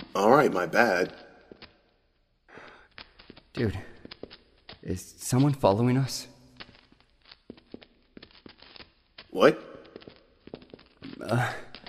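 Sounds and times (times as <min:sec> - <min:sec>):
footsteps walking: 0:00.0 - 0:11.8
speech: 0:00.2 - 0:01.2, 0:03.6 - 0:03.9, 0:04.8 - 0:06.3, 0:09.3 - 0:09.7, 0:11.2 - 0:11.6.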